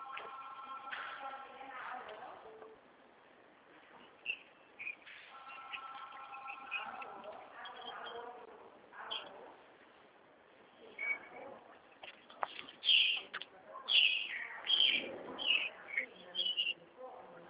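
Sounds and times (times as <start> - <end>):
soft steady outdoor background: 0.0 - 17.4
small birds singing: 4.0 - 8.4, 9.0 - 9.5, 10.8 - 16.9.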